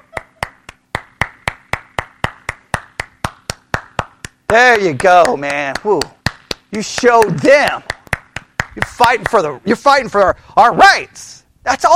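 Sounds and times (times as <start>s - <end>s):
one person clapping slowly: 0.0s - 9.4s
speech: 4.5s - 8.0s, 8.8s - 11.9s.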